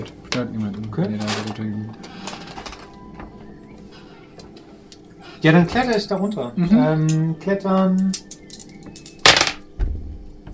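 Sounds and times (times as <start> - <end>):
speech: 0.0 - 2.3, 5.4 - 8.3
dice clattering onto a table during a tabletop role-playing game: 8.4 - 9.6.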